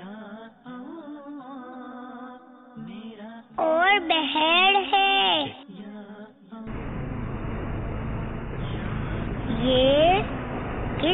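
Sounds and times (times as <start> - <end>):
speech: 4.0 - 5.6
tractor engine running in a field: 6.7 - 11.1.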